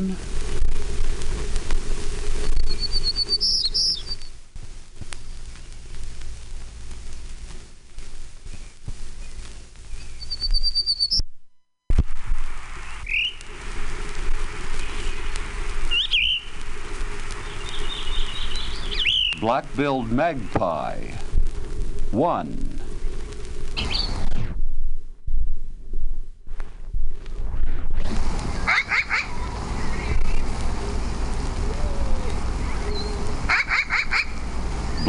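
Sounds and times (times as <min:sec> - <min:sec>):
speech: 0:00.0 - 0:00.4, 0:19.5 - 0:21.3, 0:22.1 - 0:22.6
steady hiss: 0:00.0 - 0:35.0
Townsend's warbler singing short high buzzy phrases: 0:02.4 - 0:04.4, 0:08.5 - 0:11.2, 0:13.0 - 0:13.4, 0:14.8 - 0:16.6, 0:17.4 - 0:20.4, 0:23.8 - 0:24.2, 0:31.8 - 0:34.3, 0:34.9 - 0:35.0.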